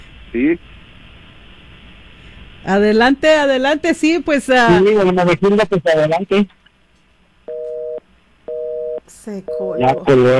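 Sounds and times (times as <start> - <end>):
speech: 0.3 - 0.8, 2.6 - 6.6, 9.2 - 10.3
telephone line tone beeping after a call is cut off: 7.5 - 10.0.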